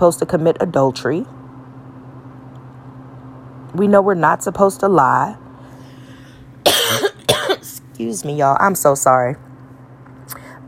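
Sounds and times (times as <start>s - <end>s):
speech: 0.0s - 1.4s, 3.7s - 5.4s, 8.0s - 9.5s
person coughing: 6.6s - 7.8s.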